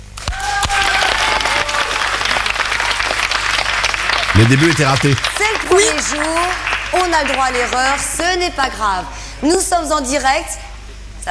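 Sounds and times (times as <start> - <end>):
studio audience applause: 0.2 - 8.5
audience whistles and cheers: 0.3 - 3.2
speech: 4.4 - 10.6.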